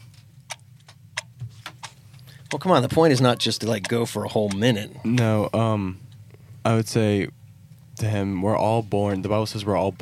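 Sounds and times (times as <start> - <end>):
low constant hum: 0.0 - 10.0
clock ticking: 0.5 - 1.9, 2.5 - 5.3
speech: 2.5 - 6.0, 6.6 - 7.4, 8.0 - 10.0.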